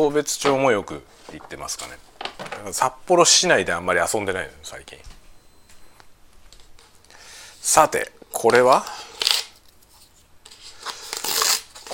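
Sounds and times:
speech: 0:00.0 - 0:05.2, 0:07.6 - 0:09.1
paper wrapper rustling and tearing off a plastic cup: 0:08.7 - 0:11.9.

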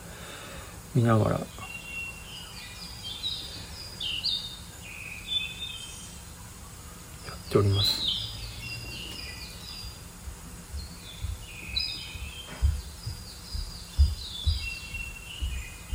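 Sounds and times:
birds chirping and warbling: 0:00.0 - 0:15.9
speech: 0:00.9 - 0:01.6, 0:07.5 - 0:08.0.

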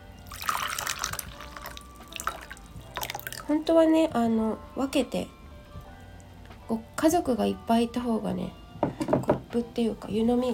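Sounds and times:
hot water poured into teapot for genmaicha: 0:00.2 - 0:03.5
speech: 0:03.5 - 0:05.4, 0:06.7 - 0:10.5.

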